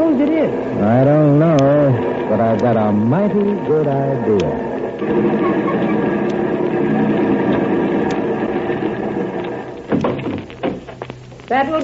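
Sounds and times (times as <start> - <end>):
car engine idling on a street: 0.0 - 11.0
speech: 0.2 - 1.5, 2.3 - 7.2, 11.5 - 11.8
brief clunk or knock: 9.4 - 11.1.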